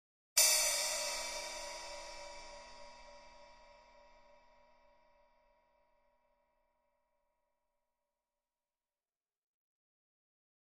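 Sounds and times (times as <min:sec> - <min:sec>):
cymbal accent hit: 0:00.4 - 0:05.2.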